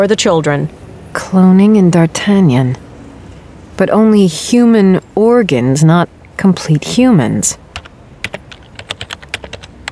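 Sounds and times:
speech: 0.0s - 2.8s, 3.8s - 7.6s
typing a web search on a computer keyboard: 7.8s - 9.8s.

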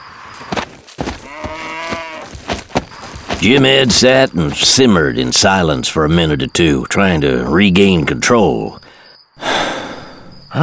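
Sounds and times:
sharp knocks and thumps: 0.5s - 4.7s
cow mooing: 1.2s - 2.3s
speech: 3.4s - 8.8s.

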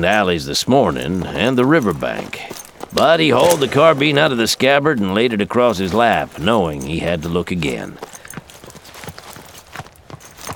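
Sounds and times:
speech: 0.0s - 8.2s
horse hooves clip-clopping at walking pace along a town street: 0.0s - 10.5s.

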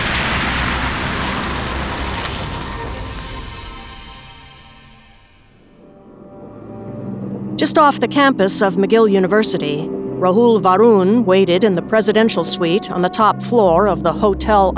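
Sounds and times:
old Ford car engine puttering away from the curb: 0.0s - 3.4s
road noise: 0.0s - 5.8s
speech: 7.6s - 14.7s.

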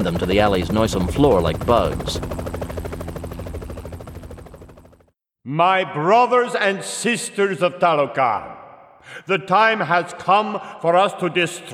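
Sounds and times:
speech: 0.0s - 2.4s, 5.5s - 11.7s
helicopter rotor blades chopping over an alley: 0.0s - 5.1s.

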